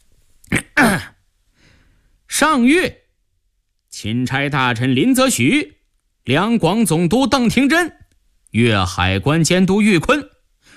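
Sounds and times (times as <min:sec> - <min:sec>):
man clearing his throat: 0:00.5 - 0:01.2
speech: 0:02.4 - 0:03.0, 0:04.0 - 0:10.7.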